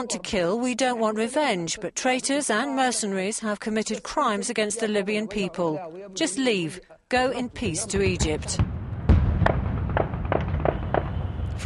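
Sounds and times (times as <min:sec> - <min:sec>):
speech: 0:00.0 - 0:08.8
sharp bangs and pops from fireworks or celebratory gunfire: 0:07.8 - 0:11.6.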